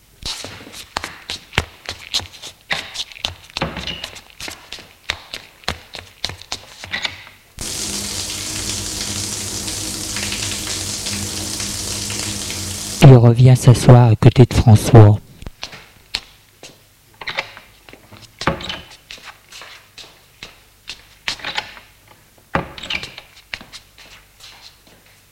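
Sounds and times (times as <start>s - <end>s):
water splashing in a bathroom sink during washing: 7.6s - 13.2s
speech: 13.2s - 15.2s.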